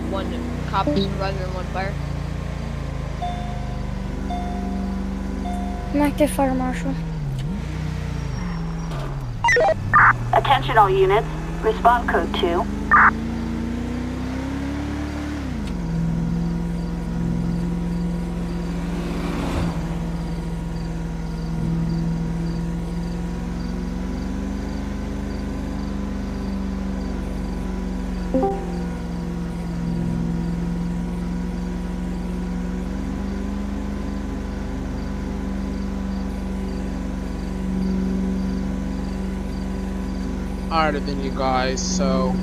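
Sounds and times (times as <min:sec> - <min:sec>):
car engine droning in a police patrol video game: 0:00.0 - 0:42.4
speech: 0:00.1 - 0:02.1, 0:05.9 - 0:07.1, 0:09.6 - 0:13.3, 0:40.8 - 0:42.4.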